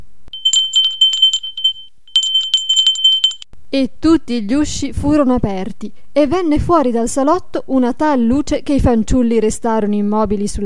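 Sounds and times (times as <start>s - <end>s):
small bell ringing: 0.4s - 3.5s
speech: 3.7s - 10.6s.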